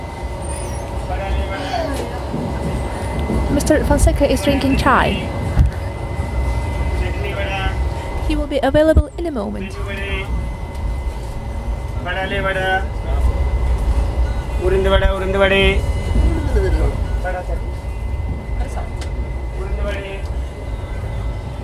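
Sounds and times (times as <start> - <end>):
low rumble and clatter of a moving passenger train from inside a carriage: 0.0 - 21.6
indistinct voices: 0.7 - 21.6
speech: 3.6 - 5.4, 8.3 - 10.0, 12.1 - 13.0, 14.6 - 15.9, 16.5 - 17.7.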